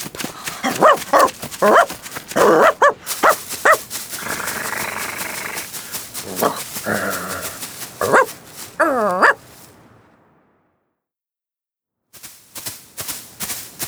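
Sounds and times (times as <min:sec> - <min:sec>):
dog barking: 0:00.4 - 0:03.9, 0:06.3 - 0:06.6, 0:08.0 - 0:09.5.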